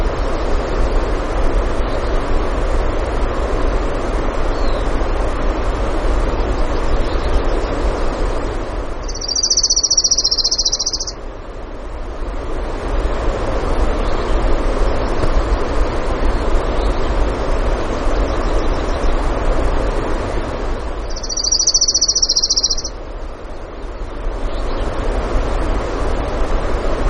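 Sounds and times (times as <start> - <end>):
rushing background noise in Denali Alaska: 0.0 - 27.0
Orange-crowned warbler high trill in Denali Alaska: 9.0 - 11.2, 21.1 - 22.9.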